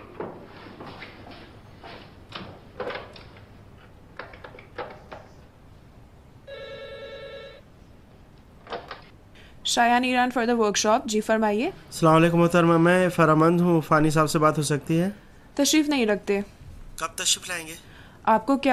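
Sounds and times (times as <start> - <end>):
single electronic telephone ring: 6.5 - 7.7
speech: 9.7 - 18.7.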